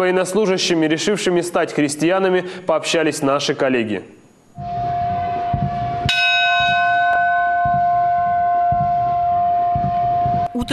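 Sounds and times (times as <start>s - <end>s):
speech: 0.0s - 4.8s
church bell of a military church on a Russian military testing range ringing: 4.9s - 10.4s.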